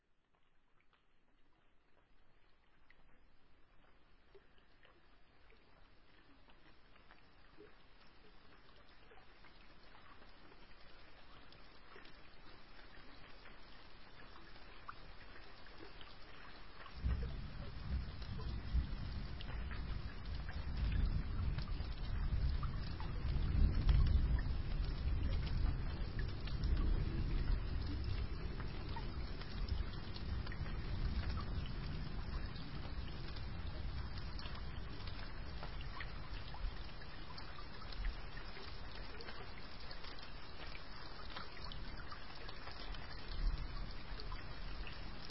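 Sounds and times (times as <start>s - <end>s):
gentle rain: 0.0s - 45.2s.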